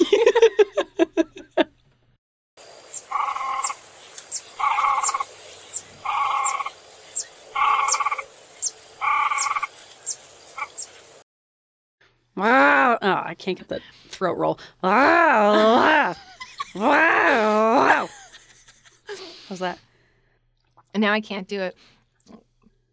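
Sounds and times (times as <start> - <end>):
laughter: 0.0 - 1.7, 15.0 - 19.2
crested grebes (pūteketeke) calling under overhanging willows: 2.8 - 11.1
speech: 13.4 - 18.1, 19.6 - 19.9, 21.0 - 22.0.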